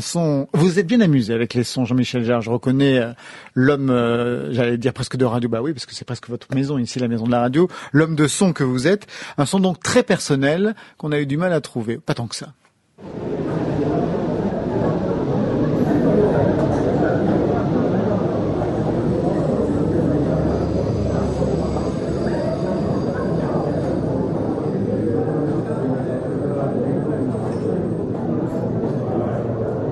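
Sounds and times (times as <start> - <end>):
speech: 0.0 - 13.4
murmuring voices in a café near a train station: 13.0 - 29.9.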